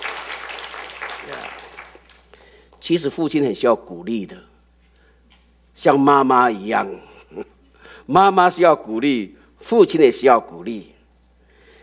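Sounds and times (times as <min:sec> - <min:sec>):
church congregation applauding: 0:00.0 - 0:02.8
speech: 0:02.8 - 0:04.5, 0:05.8 - 0:11.0.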